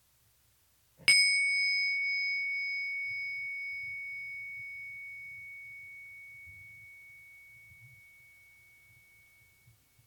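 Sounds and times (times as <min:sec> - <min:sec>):
meditation bell ringing: 0:01.1 - 0:10.0.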